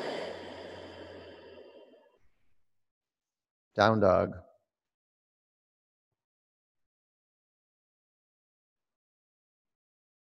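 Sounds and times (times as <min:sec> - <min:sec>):
deep breath exhale during a yoga session: 0:00.0 - 0:02.0
speech: 0:03.8 - 0:04.5.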